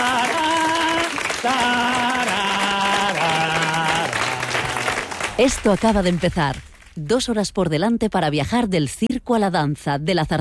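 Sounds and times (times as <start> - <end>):
applause from a large audience: 0.0 - 6.6
speech: 1.4 - 2.0, 5.4 - 10.3.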